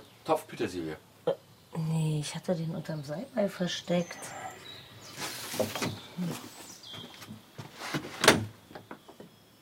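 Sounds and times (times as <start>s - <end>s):
speech: 0.2s - 4.4s, 5.6s - 6.6s
door being opened with rattling scraping clunks: 7.7s - 8.9s.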